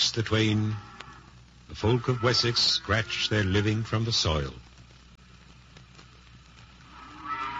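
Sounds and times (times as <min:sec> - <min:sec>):
steady hum: 0:00.0 - 0:07.5
speech: 0:00.2 - 0:00.9, 0:01.7 - 0:04.7
cows mooing in a barn: 0:06.9 - 0:07.5.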